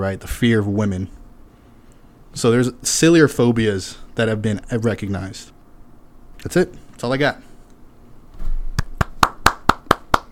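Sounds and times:
speech: 0:00.0 - 0:01.2, 0:02.3 - 0:05.6, 0:06.4 - 0:07.5
small group clapping in unison: 0:08.8 - 0:10.2.

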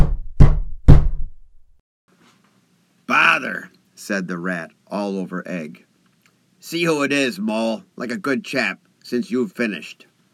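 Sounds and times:
heavy knocks on a wooden door: 0:00.0 - 0:01.2
speech: 0:03.4 - 0:05.9, 0:06.6 - 0:10.1.

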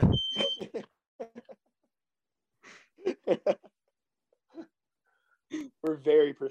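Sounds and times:
smoke alarm giving a shrill high-pitched beep: 0:00.0 - 0:00.8
laughter: 0:00.4 - 0:01.6, 0:02.7 - 0:03.7
speech: 0:06.0 - 0:06.4.

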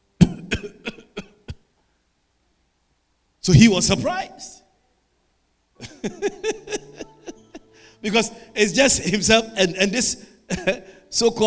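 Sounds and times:
person coughing: 0:00.2 - 0:01.7
speech: 0:03.4 - 0:04.6, 0:06.0 - 0:06.7, 0:08.0 - 0:11.4
laughter: 0:05.8 - 0:07.8.

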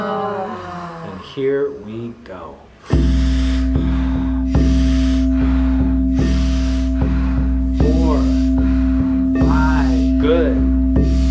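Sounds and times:
steady low tone: 0:00.0 - 0:11.2
speech: 0:01.4 - 0:03.8
big breath in and out through an open mouth during a guided breathing exercise: 0:02.8 - 0:09.5.

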